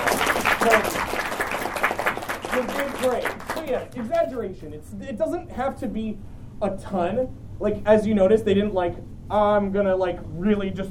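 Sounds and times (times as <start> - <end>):
room full of people applauding: 0.0 - 4.0
speech: 0.6 - 1.0, 2.6 - 10.8.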